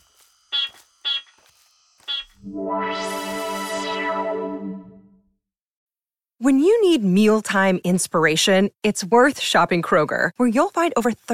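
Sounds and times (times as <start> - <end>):
short electronic beeps: 2.1 - 5.0
speech: 2.4 - 2.8, 6.4 - 11.3
long loud buzzy electronic tone: 2.4 - 5.2.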